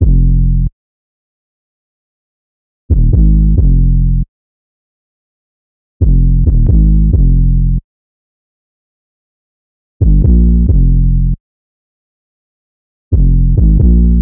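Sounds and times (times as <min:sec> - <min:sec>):
808 loop in F minor: 0:00.0 - 0:00.4, 0:02.9 - 0:04.0, 0:06.0 - 0:07.6, 0:10.0 - 0:11.1, 0:13.2 - 0:14.2.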